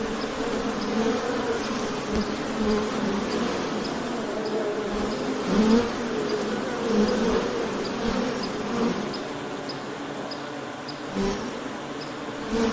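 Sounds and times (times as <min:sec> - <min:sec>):
honey bees wing buzzing: 0:00.0 - 0:12.7.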